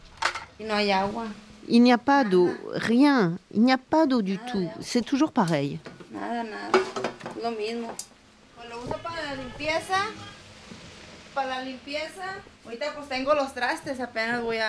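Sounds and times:
speech: 0.6s - 10.3s, 11.4s - 14.6s
dishes and pots clattering in a kitchen during dishwashing: 5.8s - 7.4s.

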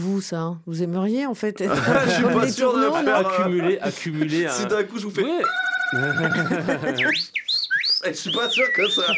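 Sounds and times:
speech: 0.0s - 7.4s, 8.0s - 9.1s
laughter: 1.7s - 4.6s, 5.9s - 7.3s, 8.6s - 9.1s
person whistling an imitation of starling song: 6.9s - 9.1s.

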